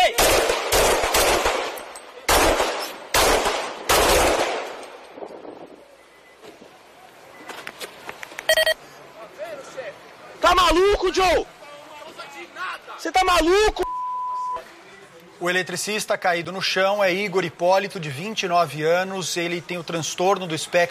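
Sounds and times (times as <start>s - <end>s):
loud gunshots in a police bodycam recording: 0.0s - 5.0s
noise: 0.0s - 20.8s
brief electronic beeps: 5.9s - 6.5s, 8.5s - 8.8s, 13.8s - 14.6s
speech: 11.0s - 11.5s, 13.0s - 13.9s, 15.4s - 20.8s.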